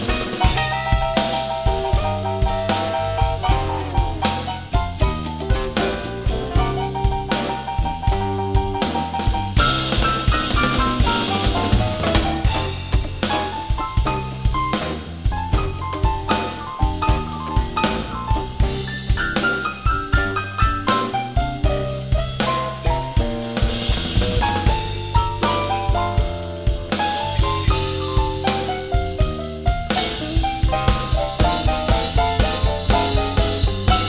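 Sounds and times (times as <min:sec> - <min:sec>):
drum fill-ins: 0:00.0 - 0:34.0
slow blues piano soloing in twelve-eight feel: 0:00.0 - 0:34.0.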